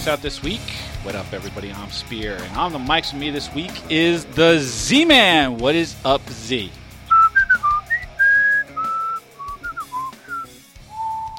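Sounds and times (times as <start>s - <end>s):
speech: 0.0s - 6.8s
person whistling a lively wandering tune: 7.1s - 11.3s.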